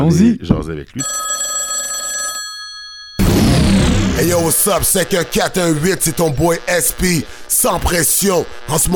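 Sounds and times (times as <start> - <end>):
speech: 0.0 - 1.3, 4.2 - 8.9
internet phone call ringing tone: 1.0 - 3.2
loud dense burst of noise as the line connects: 3.2 - 8.9.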